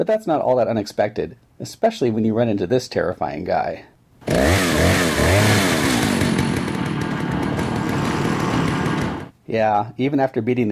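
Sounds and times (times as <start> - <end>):
speech: 0.0 - 5.6, 9.5 - 10.7
chainsaw revving, video game sound effect: 4.2 - 9.3.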